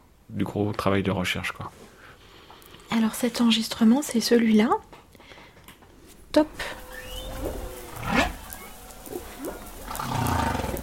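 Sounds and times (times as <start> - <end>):
speech: 0.3 - 2.0, 2.9 - 4.9, 6.3 - 6.8
humpback whale song underwater: 6.5 - 10.0.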